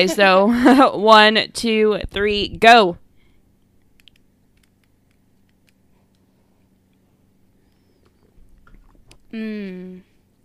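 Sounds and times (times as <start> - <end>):
speech: 0.0 - 3.0, 9.3 - 10.1
clicks and gulps of swallowing a shot of liquor: 8.2 - 9.2.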